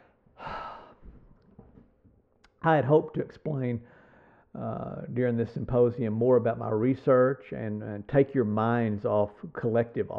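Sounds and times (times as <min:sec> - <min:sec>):
deep breath: 0:00.0 - 0:01.3, 0:03.8 - 0:04.6
speech: 0:02.6 - 0:10.1.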